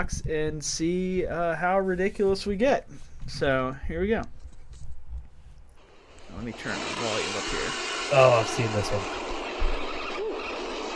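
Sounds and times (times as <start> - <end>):
speech: 0.0 - 4.4, 6.3 - 9.7
fishing braid line peeling off a spinning reel through rod guides: 6.0 - 10.9.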